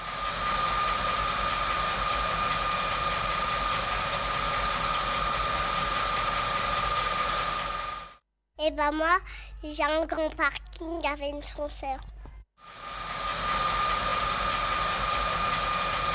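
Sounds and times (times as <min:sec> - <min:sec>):
family car engine idling while being parked: 0:00.0 - 0:08.2, 0:12.7 - 0:16.1
speech: 0:08.7 - 0:12.8.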